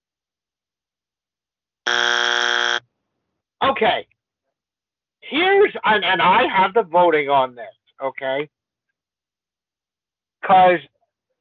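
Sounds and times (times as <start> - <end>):
loud flat buzzer blast: 1.9 - 2.8
speech: 3.8 - 4.2, 5.3 - 8.6, 10.4 - 10.9.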